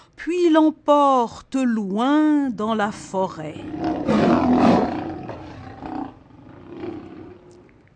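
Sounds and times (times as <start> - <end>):
speech: 0.2 - 4.7
lion roaring: 3.6 - 7.7.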